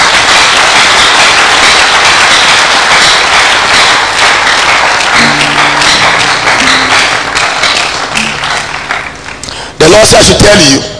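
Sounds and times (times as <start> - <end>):
large crowd clapping: 0.0 - 10.6
faint sustained musical tones: 5.2 - 9.5
speech: 10.0 - 10.9.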